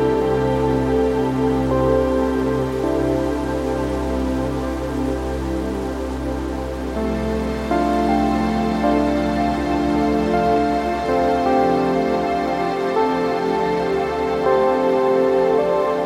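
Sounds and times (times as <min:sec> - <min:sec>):
low constant wind rushing in trees: 0:00.0 - 0:16.0
soft slow instrumental music with long held tones: 0:00.0 - 0:16.0.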